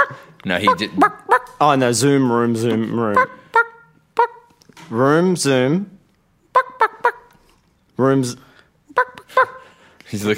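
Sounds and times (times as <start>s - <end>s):
person imitating chicken clucking and squawking: 0.0s - 1.6s, 2.9s - 4.6s, 6.5s - 7.4s, 8.9s - 9.7s
speech: 0.4s - 3.4s, 4.9s - 6.0s, 8.0s - 9.5s, 10.1s - 10.3s.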